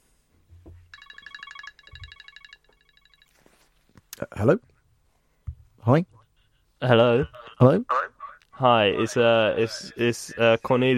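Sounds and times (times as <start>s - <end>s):
telephone ringing with a warbling electronic trill: 0.9s - 3.7s
speech: 4.2s - 4.7s, 5.8s - 6.1s, 6.8s - 8.0s, 8.6s - 10.9s.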